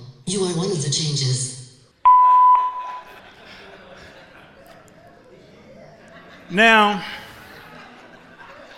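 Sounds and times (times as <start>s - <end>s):
speech: 0.3s - 1.6s, 6.5s - 7.2s
answering machine beep: 2.1s - 3.1s
laughter: 2.8s - 8.7s.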